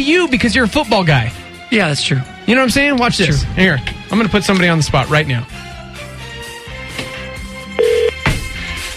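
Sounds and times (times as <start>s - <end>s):
speech: 0.0s - 5.6s
electronic telephone keypad tones: 7.8s - 8.2s.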